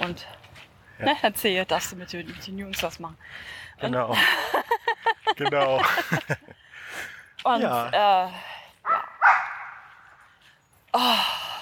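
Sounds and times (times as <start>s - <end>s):
noise: 0.0s - 11.6s
speech: 0.1s - 0.4s, 1.0s - 4.6s, 5.4s - 8.5s, 10.9s - 11.4s
laughter: 4.1s - 6.7s
dog barking outdoors near a dog park: 8.8s - 9.9s.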